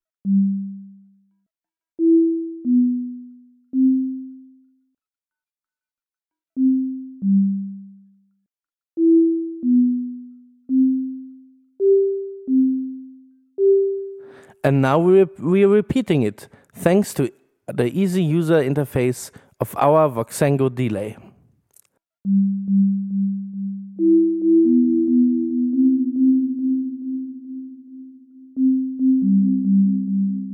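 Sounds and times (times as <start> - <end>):
dry pure sine wave tone melody of low-pitched notes: 0.1 - 1.4, 2.0 - 4.9, 6.6 - 8.4, 9.0 - 14.3, 22.2 - 30.5
speech: 14.6 - 21.2.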